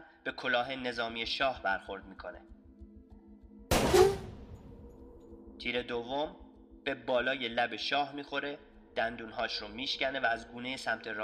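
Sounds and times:
speech: 0.2s - 2.6s, 5.6s - 11.2s
pistol shot: 3.7s - 5.0s
low rumble: 3.7s - 5.4s.

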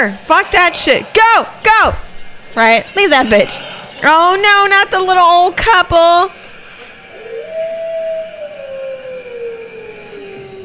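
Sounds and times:
speech: 0.0s - 2.0s, 2.6s - 6.4s
drawn-out animal howl: 6.7s - 10.6s.

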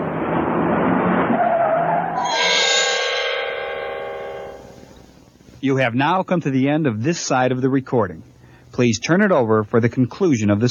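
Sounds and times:
truck tires screeching: 0.0s - 5.1s
truck engine roaring as it pulls off: 0.0s - 5.6s
speech: 5.6s - 10.6s.

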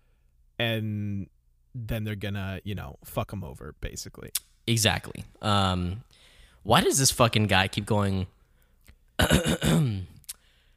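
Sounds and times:
speech: 0.6s - 8.4s, 9.2s - 10.1s
throat clearing: 9.2s - 10.2s.

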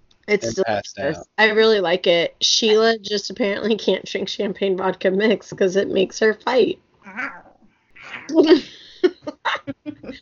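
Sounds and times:
short clipped vocal bursts: 0.3s - 1.2s, 9.7s - 10.2s
speech: 0.3s - 7.4s, 8.1s - 10.2s
laughter: 0.4s - 1.2s, 8.3s - 10.2s
cat meowing as it jumps up: 7.0s - 8.3s.

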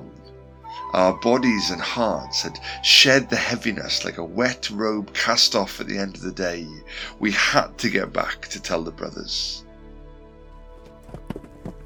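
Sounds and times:
speech: 0.8s - 9.7s
horses' hooves pounding the ground: 10.8s - 11.8s.

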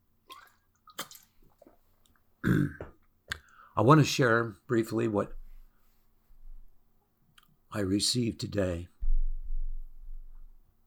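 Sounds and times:
person sipping water: 0.3s - 3.7s
speech: 2.4s - 2.9s, 3.8s - 5.4s, 7.8s - 8.9s
person gulping water: 2.4s - 3.6s.

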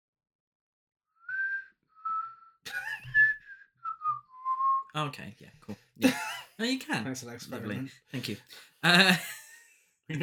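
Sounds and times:
person whistling a slow simple melody: 1.2s - 4.9s
laughter: 2.7s - 3.3s, 6.0s - 6.6s, 8.8s - 9.6s
speech: 5.0s - 9.4s, 10.1s - 10.2s.

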